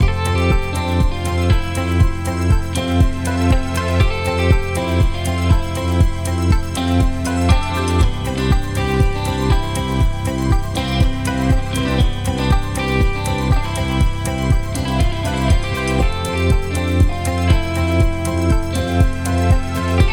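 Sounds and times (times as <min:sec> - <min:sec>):
corporate ad music with guitar: 0:00.0 - 0:20.1.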